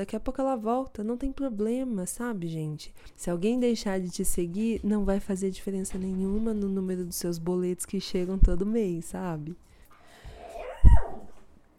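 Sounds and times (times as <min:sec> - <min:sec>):
speech: 0:00.0 - 0:09.7
dogs yelping and barking for food: 0:10.1 - 0:11.6.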